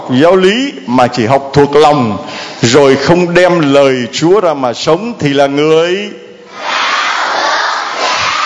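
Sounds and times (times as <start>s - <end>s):
speech: 0.1s - 6.7s
group of children shouting an answer in unison: 6.5s - 8.4s.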